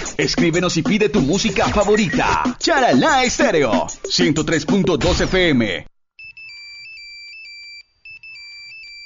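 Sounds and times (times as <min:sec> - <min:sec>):
speech: 0:00.2 - 0:05.9
cell phone ringtone with a bright warbling electronic melody: 0:06.2 - 0:09.0.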